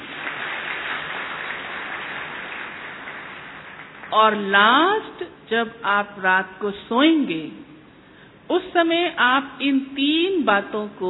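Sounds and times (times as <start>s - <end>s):
audience applause during a talk: 0.0s - 4.2s
speech: 4.1s - 7.7s, 8.5s - 11.0s.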